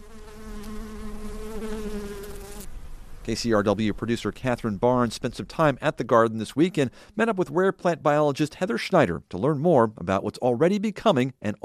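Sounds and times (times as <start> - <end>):
bees buzzing in a botanic garden in early spring wildflower season: 0.0 - 2.7
speech: 3.2 - 11.6.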